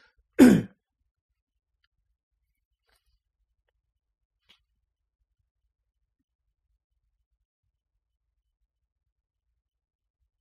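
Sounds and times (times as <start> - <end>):
throat clearing: 0.4 - 0.8.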